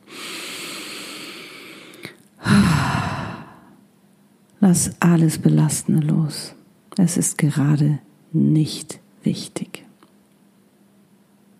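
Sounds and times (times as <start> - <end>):
deep exhale through the mouth during a guided relaxation: 0.0 - 3.7
soft steady inhale during a guided relaxation: 0.0 - 3.8
speech: 4.7 - 9.8.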